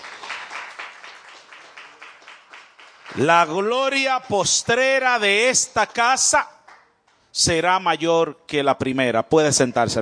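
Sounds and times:
church congregation applauding: 0.0 - 7.2
speech: 3.2 - 6.6, 7.4 - 10.0.

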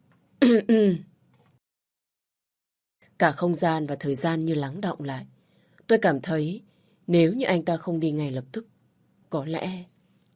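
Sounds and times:
man coughing: 0.4 - 0.8
speech: 0.4 - 1.1, 3.2 - 8.7, 9.3 - 10.3.

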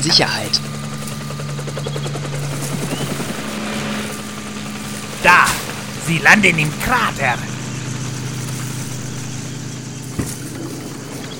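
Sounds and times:
speech: 0.0 - 0.8, 6.1 - 7.5
helicopter engine droning hum: 0.0 - 11.3
helicopter rotor chop from two helicopters searching a coastline: 0.0 - 11.3.

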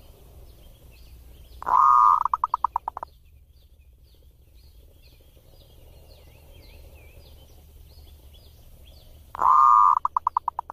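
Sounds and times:
zebra dove cooing: 1.6 - 3.0, 9.4 - 10.7.

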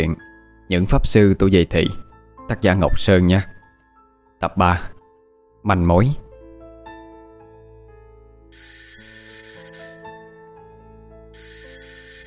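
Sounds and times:
speech: 0.0 - 3.6, 4.4 - 4.9, 5.6 - 6.2
mobile phone alarm electronic ringtone melody: 8.5 - 10.5, 11.3 - 12.2.

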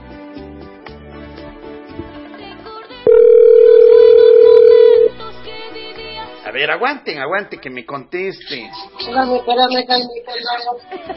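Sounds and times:
telephone dial tone while reconnecting a phone call: 3.1 - 5.2
speech: 6.5 - 11.1.

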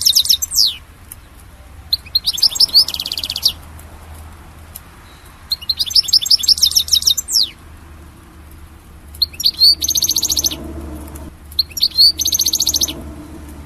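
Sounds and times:
European goldfinch singing: 0.0 - 0.8, 1.9 - 3.6, 5.1 - 7.6, 9.1 - 13.6.

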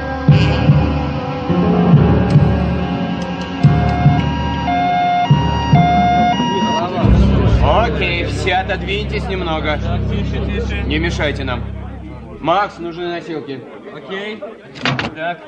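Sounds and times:
dense throbbing hum: 0.3 - 13.2
ambulance siren wailing at an accident scene: 3.1 - 12.8
speech: 8.8 - 11.8, 12.4 - 15.4.

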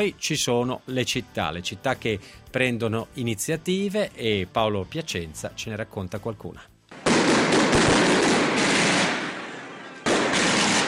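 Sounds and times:
speech: 0.0 - 6.7
New Year's Eve firecrackers and fireworks exploding: 6.9 - 10.8.

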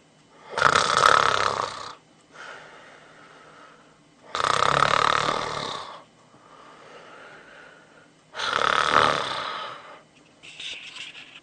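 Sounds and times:
person snoring in sleep: 0.4 - 2.6, 4.3 - 6.0, 8.4 - 10.0
snort of a sleeping person: 0.5 - 2.0, 4.3 - 6.0, 8.4 - 9.8
breathy exhales of a sleeping person: 2.3 - 4.0, 5.9 - 8.6.

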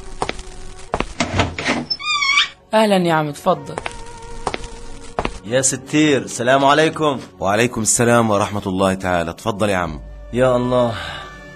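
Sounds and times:
door being opened in a home for a visitor: 1.2 - 2.6
speech: 2.7 - 3.9, 5.4 - 11.2.

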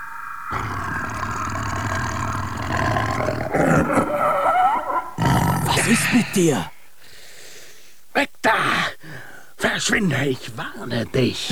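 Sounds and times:
leopard caught in a foot snare roaring: 0.3 - 6.3
speech: 5.9 - 6.8, 9.8 - 11.4.

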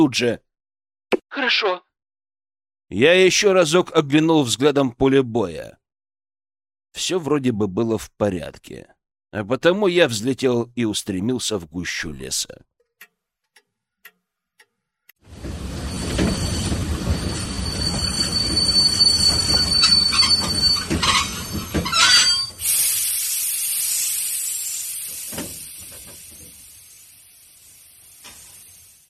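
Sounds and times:
speech: 0.0 - 0.4, 1.3 - 1.9, 2.9 - 5.8, 6.9 - 12.7
sharp ticks: 12.8 - 15.2
train pulling into a station rumbling: 15.2 - 23.0
train high wheel squeal: 15.3 - 22.8.

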